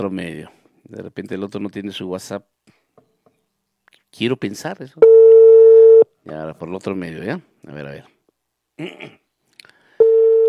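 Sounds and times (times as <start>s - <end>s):
speech: 0.0s - 2.8s, 4.1s - 5.3s, 6.2s - 8.2s, 8.8s - 9.2s
telephone ringback tone: 5.0s - 6.0s, 10.0s - 10.4s.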